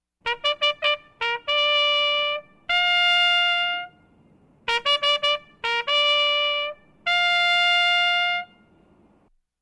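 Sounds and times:
trumpet call: 0.2s - 9.0s.

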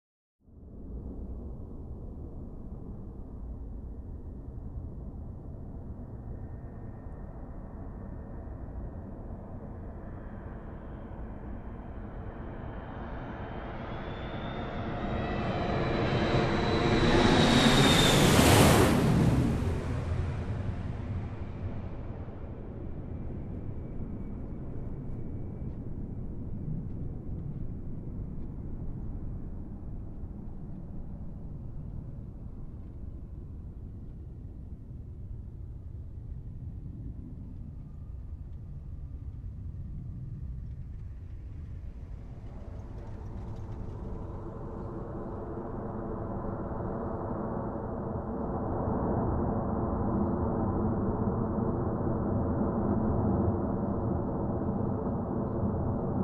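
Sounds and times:
airplane on a runway taking off: 10.1s - 33.8s, 39.4s - 56.2s.

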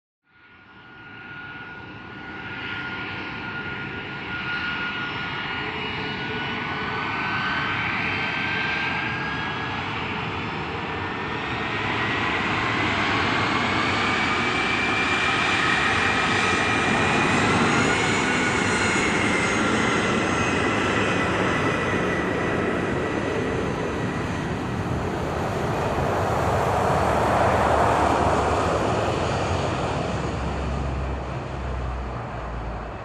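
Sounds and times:
aircraft rolling on the ground from hangars: 1.0s - 33.0s.

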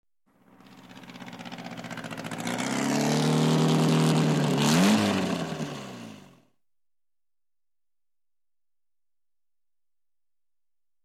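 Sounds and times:
motorbike engine revving: 0.4s - 6.5s.

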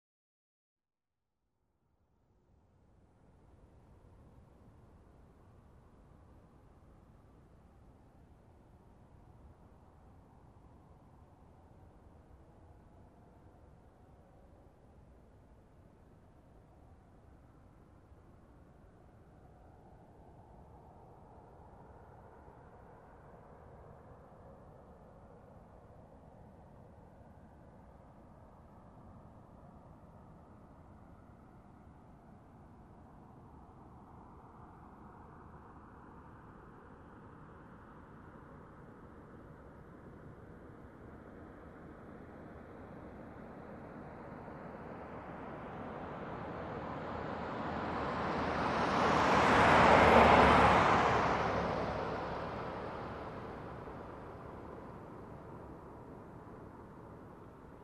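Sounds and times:
car passing by at medium speed: 28.7s - 57.8s.

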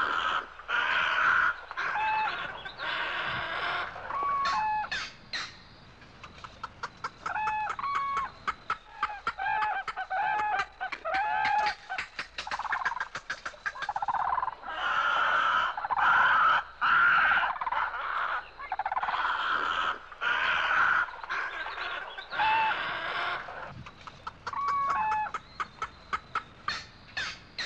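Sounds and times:
Indian peafowl clucking in harsh buzzy bursts: 0.0s - 27.6s
sharp clicking taps: 6.1s - 14.0s.

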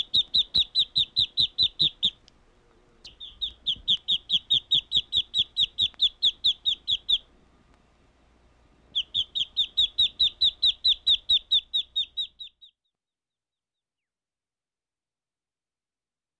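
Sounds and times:
bird chirping: 0.0s - 7.3s, 8.9s - 13.0s.

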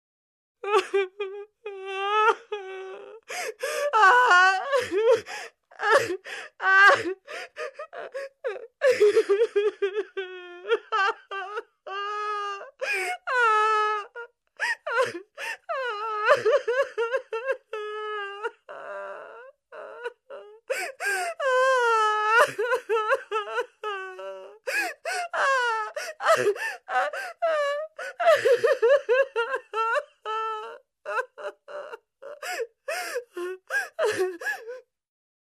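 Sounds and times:
adult woman crying: 0.6s - 34.9s.

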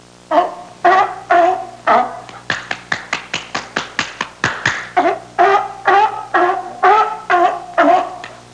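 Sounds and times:
seal calling: 0.3s - 2.3s, 4.9s - 8.4s.

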